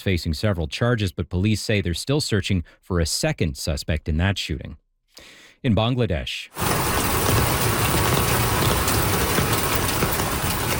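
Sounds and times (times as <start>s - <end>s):
speech: 0.0s - 6.8s
floodwater rushing from a swollen river in Bangladesh: 6.6s - 10.7s.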